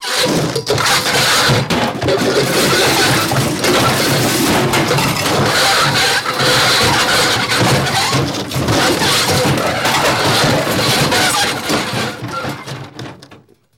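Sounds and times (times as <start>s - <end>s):
car hitting and dragging in crashes: 0.0s - 13.7s.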